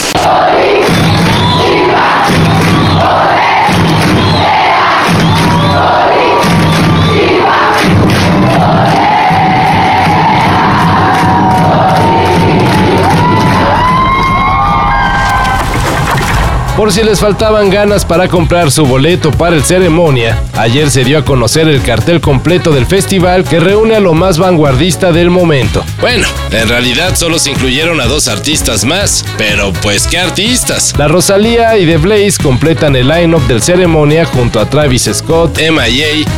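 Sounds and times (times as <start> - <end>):
stadium crowd of women and children chanting: 0.0 - 14.0
stadium crowd cheering and shouting: 0.0 - 21.4, 22.0 - 33.0
speech: 16.8 - 36.3.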